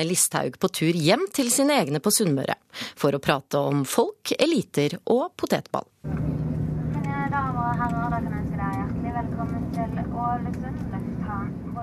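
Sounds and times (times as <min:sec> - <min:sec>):
speech: 0:00.0 - 0:06.3
airplane engine drone in the cabin during landing: 0:06.0 - 0:11.8.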